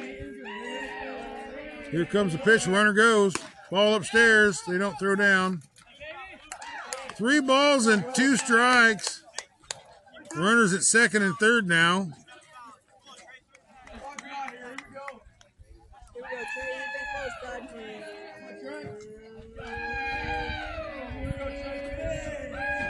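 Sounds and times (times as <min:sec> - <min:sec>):
baseball team chanting a war chant from the dugout: 0:00.0 - 0:04.5, 0:17.2 - 0:22.8
crowd chatter at a baseball game: 0:00.0 - 0:22.8
speech: 0:01.9 - 0:05.7, 0:07.2 - 0:09.2, 0:10.4 - 0:12.2.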